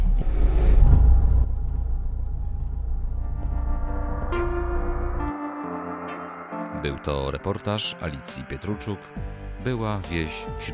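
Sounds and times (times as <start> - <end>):
car engine rumble on a road near a village among marshes: 0.0 - 5.3
speech: 6.8 - 10.7.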